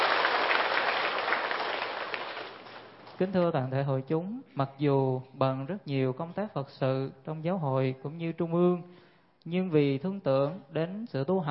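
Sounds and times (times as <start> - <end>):
audience applause welcoming a speaker: 0.0 - 3.1
speech: 3.2 - 11.4.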